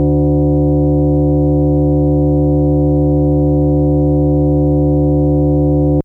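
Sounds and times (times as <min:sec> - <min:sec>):
FM sawtooth synth note D2 on a Yamaha DX100: 0:00.0 - 0:06.0.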